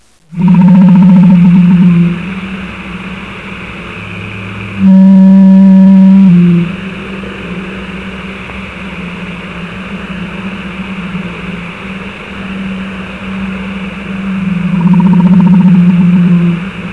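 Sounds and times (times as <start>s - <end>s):
ocean noise: 0.0s - 16.9s
blue whale call: 0.3s - 2.7s, 4.7s - 7.2s, 9.8s - 16.9s.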